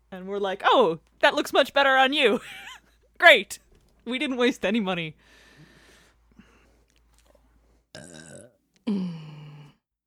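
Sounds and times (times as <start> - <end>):
speech: 0.1 - 5.4
person burping: 7.9 - 9.8.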